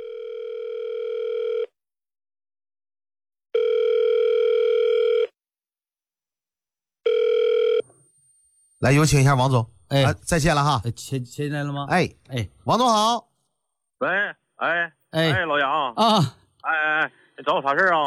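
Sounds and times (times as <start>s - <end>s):
ringback tone of an outgoing phone call: 0.0s - 1.7s, 3.6s - 5.4s, 7.0s - 8.6s
speech: 8.8s - 13.3s, 14.0s - 18.0s.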